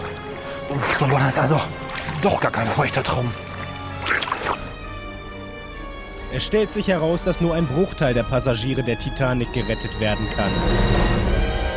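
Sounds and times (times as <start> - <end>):
water pouring and splashing: 0.0 - 4.8
speech: 0.7 - 4.2, 6.3 - 11.2.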